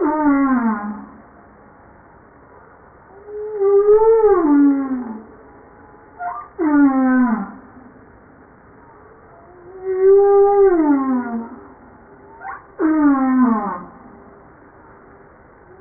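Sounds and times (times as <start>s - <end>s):
humpback whale song of harmonic moans and upward sweeps: 0.0s - 1.2s, 3.1s - 7.9s, 9.2s - 14.3s.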